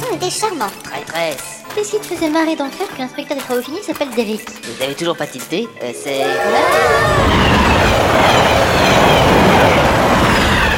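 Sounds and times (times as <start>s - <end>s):
speech: 0.2s - 8.7s
train rumbling past: 5.9s - 10.7s
train wheels clattering in a clickety-clack rhythm: 6.7s - 10.7s.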